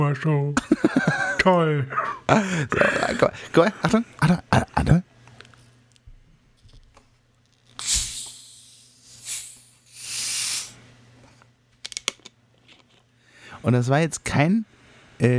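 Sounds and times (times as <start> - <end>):
speech: 0.0 - 5.1, 13.6 - 15.3
laughter: 0.6 - 5.0
hissing from a bottle being opened: 7.8 - 10.9.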